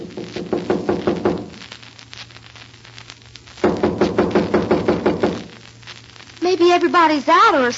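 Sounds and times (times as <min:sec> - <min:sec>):
firm knocking on a wooden cabin door: 0:00.1 - 0:01.5, 0:03.6 - 0:05.4
speech: 0:06.6 - 0:07.7.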